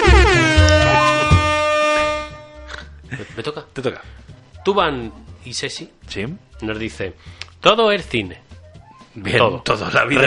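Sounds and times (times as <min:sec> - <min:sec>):
air horn sound effect blast: 0:00.0 - 0:02.9
speech: 0:03.8 - 0:08.5, 0:09.2 - 0:10.2.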